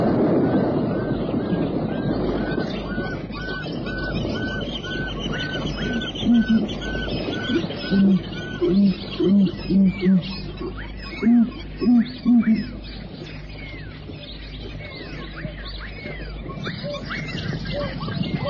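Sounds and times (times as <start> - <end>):
chorus of birds honking and calling around the edge of the water: 0.0 - 18.4
zebra high-pitched barking cries: 6.0 - 12.8.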